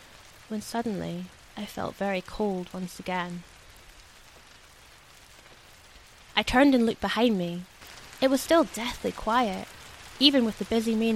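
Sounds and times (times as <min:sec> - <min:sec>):
heavy rain pouring down: 0:00.0 - 0:11.1
speech: 0:00.5 - 0:03.5, 0:06.4 - 0:11.1.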